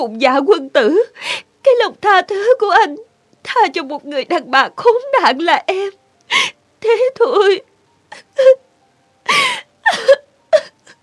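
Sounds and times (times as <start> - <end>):
speech: 0.0 - 8.6
woman sobbing with wailing, moaning cries: 8.1 - 8.6, 9.2 - 11.0.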